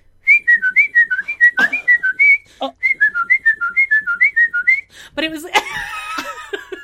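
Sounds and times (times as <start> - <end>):
person whistling a fast bouncy guitar solo melody: 0.3 - 4.9.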